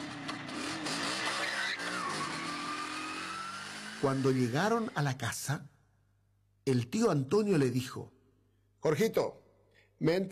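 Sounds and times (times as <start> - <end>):
motorcycle engine starting, revving and speeding away: 0.0 - 5.0
speech: 4.0 - 5.7, 6.6 - 8.2, 8.8 - 9.4, 10.0 - 10.3.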